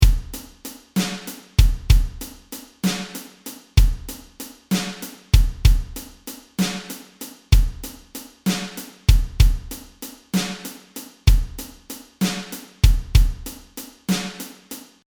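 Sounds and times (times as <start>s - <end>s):
blues drum kit: 0.0s - 15.0s.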